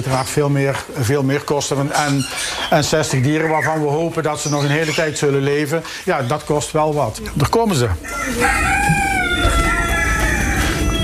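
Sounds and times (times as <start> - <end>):
speech: 0.0 - 9.1
many birds clucking and shuffling: 0.0 - 11.0
roosters crowing: 8.0 - 11.0.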